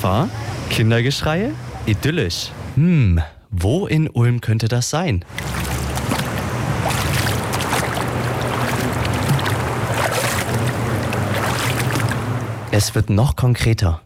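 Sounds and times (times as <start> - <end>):
speech: 0.0 - 5.7, 12.7 - 14.0
water flowing in a Kneipp wading pool in Ulm: 5.3 - 12.8.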